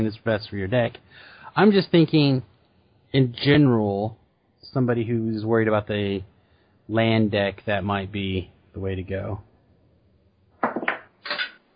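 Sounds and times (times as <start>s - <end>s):
speech: 0.0s - 2.5s, 3.1s - 6.3s, 6.9s - 9.5s
die dropped onto a table clattering: 10.6s - 11.6s.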